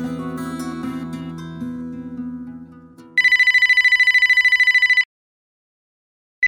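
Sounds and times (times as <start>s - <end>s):
music: 0.0s - 3.2s
telephone ringing with electronic trill: 3.2s - 5.1s.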